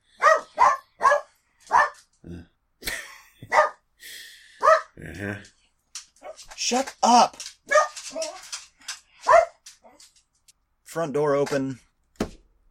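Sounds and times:
dog barking in sharp loud bursts: 0:00.2 - 0:02.0, 0:03.5 - 0:03.8, 0:04.6 - 0:05.0, 0:07.7 - 0:08.4, 0:09.2 - 0:09.6
dog yelping softly: 0:00.2 - 0:02.0, 0:07.7 - 0:08.5, 0:09.3 - 0:09.6
speech: 0:05.2 - 0:05.6, 0:06.7 - 0:07.5, 0:11.0 - 0:11.9.

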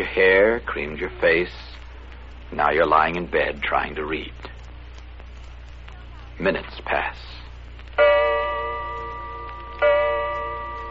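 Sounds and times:
speech: 0:00.0 - 0:01.7, 0:02.5 - 0:04.5, 0:06.4 - 0:07.3
grandfather clock striking the hour: 0:08.0 - 0:10.8.

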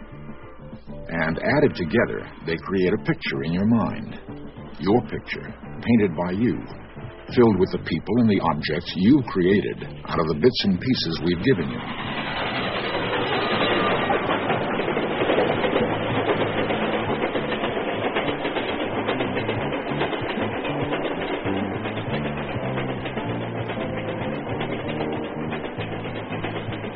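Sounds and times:
train passing a railroad crossing: 0:00.0 - 0:26.9
speech: 0:01.1 - 0:04.2, 0:04.8 - 0:12.6.

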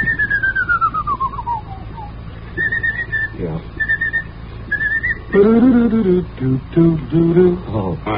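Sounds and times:
person whistling a march tune: 0:00.0 - 0:05.6
faint hiss: 0:00.0 - 0:08.1
speech: 0:05.3 - 0:08.1.

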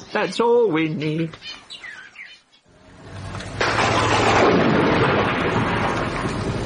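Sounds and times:
bird chirps: 0:00.0 - 0:02.7
speech: 0:00.1 - 0:01.8
low rumble: 0:02.7 - 0:06.6.

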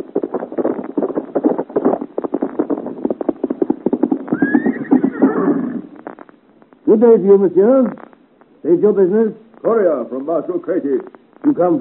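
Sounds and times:
horse ridden at full gallop along a road: 0:00.0 - 0:06.2
horse whinnying: 0:04.3 - 0:06.0
speech: 0:06.9 - 0:08.0, 0:08.6 - 0:11.8.

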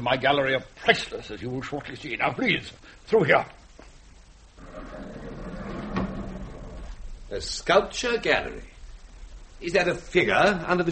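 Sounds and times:
speech: 0:00.0 - 0:03.6, 0:07.3 - 0:08.7, 0:09.6 - 0:10.9
heavy concealed door grinding and sliding open: 0:04.6 - 0:07.0.

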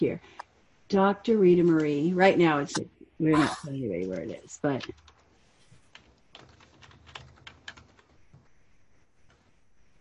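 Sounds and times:
speech: 0:00.0 - 0:05.1
typing on a computer keyboard to enter a name to log in: 0:04.0 - 0:08.1.

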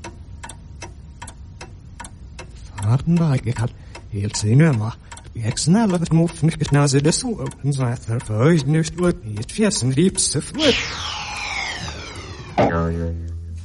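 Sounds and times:
clock ticking: 0:00.0 - 0:10.6
garbled backwards-sounding speech: 0:10.4 - 0:13.2
brief sustained tone: 0:10.6 - 0:12.9
loud descending whoosh: 0:10.6 - 0:13.1.

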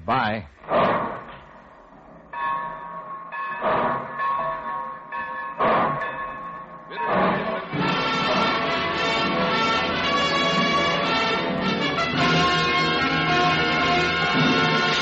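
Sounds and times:
speech: 0:00.0 - 0:01.0
ringing bell-like tone: 0:02.3 - 0:08.4
train pulling out of station with steam chugging: 0:06.8 - 0:15.0.

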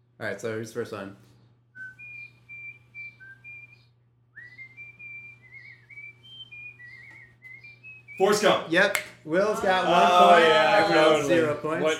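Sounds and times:
steady low hum: 0:00.0 - 0:11.9
speech: 0:00.2 - 0:01.3, 0:08.2 - 0:11.9
person whistling a slow tuneful movie theme melody: 0:01.8 - 0:08.2.

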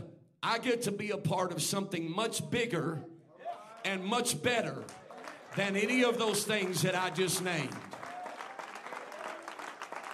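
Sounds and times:
speech: 0:00.4 - 0:03.1, 0:03.8 - 0:05.0, 0:05.6 - 0:08.0
crowd clapping hands: 0:04.7 - 0:10.1.

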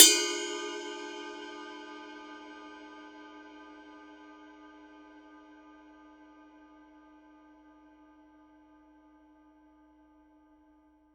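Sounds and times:
Paiste 24 Rude Mega Power ride cymbal bell: 0:00.0 - 0:03.2.

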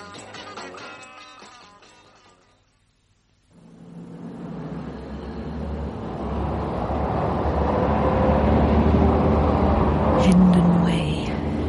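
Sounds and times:
car driving along a road in London toward the motorway: 0:03.6 - 0:11.6.

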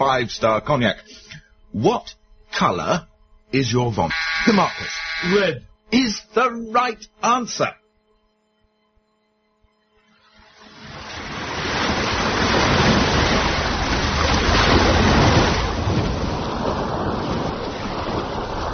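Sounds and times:
speech: 0:00.0 - 0:07.8
ocean surf rolling in: 0:10.4 - 0:18.7.

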